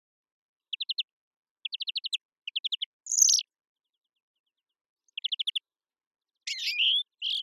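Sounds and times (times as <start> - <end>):
European greenfinch Chloris chloris giving rapid chirps: 1.6 - 3.4, 5.2 - 5.6, 6.5 - 7.4.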